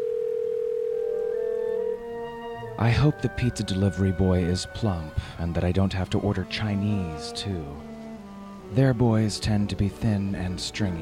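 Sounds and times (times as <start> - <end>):
telephone dial tone of a phone call: 0.0 - 1.9
speech: 2.8 - 7.9, 8.7 - 11.0.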